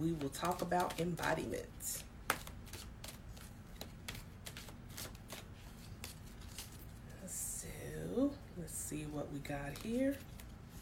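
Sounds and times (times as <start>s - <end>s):
speech: 0.0s - 2.1s, 8.2s - 10.3s
deck of oracle cards shuffled by hand: 0.1s - 7.0s, 9.7s - 10.8s.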